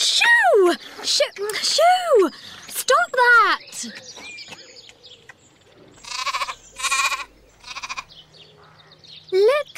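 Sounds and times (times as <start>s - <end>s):
speech: 0.7s - 4.1s
goat bleating on a farm: 6.0s - 8.2s.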